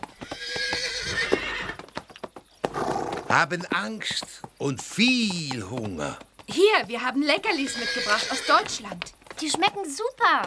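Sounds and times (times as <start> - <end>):
thin skittish horses whinnying beside a horse-drawn carriage: 0.0 - 3.6, 7.4 - 9.0
clip-clop hoof beats: 0.0 - 10.4
speech: 3.3 - 10.4.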